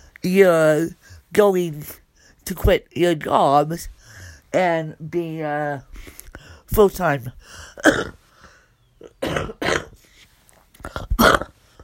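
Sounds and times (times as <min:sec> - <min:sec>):
speech: 0:00.2 - 0:08.2, 0:09.2 - 0:09.8
harsh raspy coughing fit: 0:07.4 - 0:10.1, 0:10.8 - 0:11.8.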